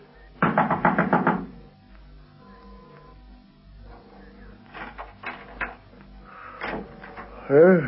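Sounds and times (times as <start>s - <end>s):
police lieutenant knocking on the wooden door of a house: 0.4s - 1.6s.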